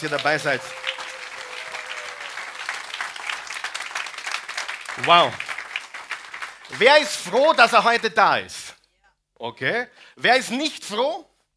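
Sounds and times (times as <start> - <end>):
speech: 0.0 - 0.9, 5.0 - 5.5, 6.7 - 8.6, 9.4 - 11.3
audience applause: 0.0 - 7.8.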